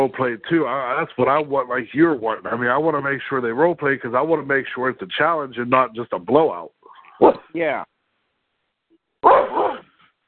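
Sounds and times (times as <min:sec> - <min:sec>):
speech: 0:00.0 - 0:07.9
dog barking: 0:07.2 - 0:07.5, 0:09.2 - 0:09.9.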